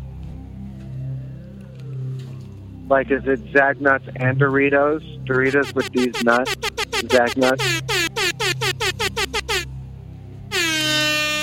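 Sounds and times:
speech: 2.9 - 8.0
air horn sound effect blasts: 5.5 - 9.7, 10.5 - 11.4.

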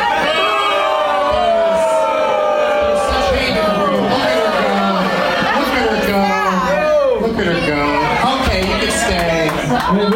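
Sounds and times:
large audience booing: 0.0 - 9.1.

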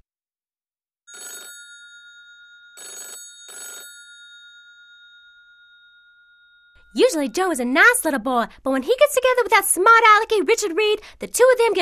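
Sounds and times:
telephone bell ringing: 1.1 - 7.1
speech: 6.8 - 11.8.

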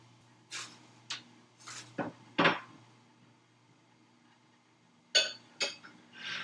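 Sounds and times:
low steady hum: 0.0 - 6.4
ceramic bowls being taken out and handled: 5.2 - 5.9.

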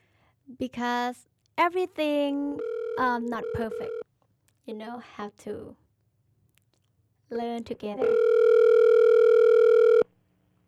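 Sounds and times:
speech: 0.5 - 4.0, 4.7 - 5.8, 7.3 - 8.4
steady loud telephone call tone: 2.6 - 4.0, 8.0 - 10.1.

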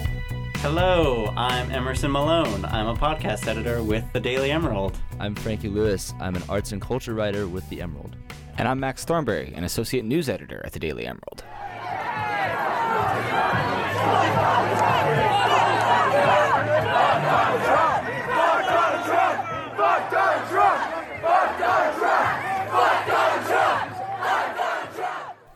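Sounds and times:
speech: 0.6 - 11.8
large crowd of students chanting and shouting at a protest: 11.5 - 25.5.

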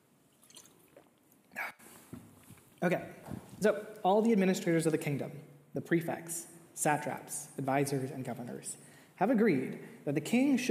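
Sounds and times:
faint small liquid drips: 0.3 - 1.4
person taking a drink of water: 0.3 - 2.8
shuffling: 1.8 - 3.8
speech: 2.8 - 10.6.

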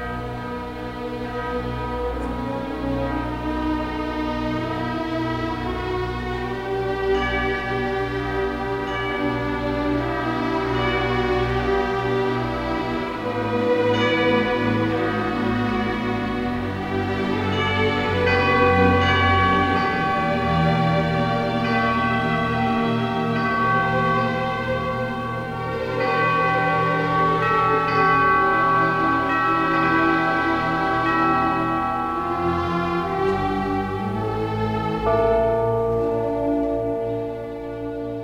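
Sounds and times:
church bells ringing: 0.0 - 38.2
orchestral music: 0.0 - 38.2.

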